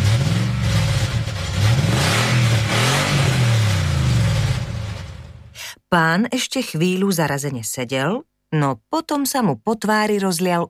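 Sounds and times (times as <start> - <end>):
taxi engine revving: 0.0 - 5.6
speech: 5.9 - 10.6.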